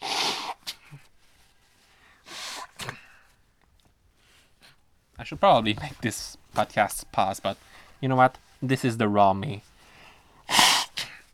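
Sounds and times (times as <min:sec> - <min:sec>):
person blowing nose: 0:00.0 - 0:01.2, 0:02.1 - 0:03.2, 0:09.6 - 0:11.3
speech: 0:05.2 - 0:09.7.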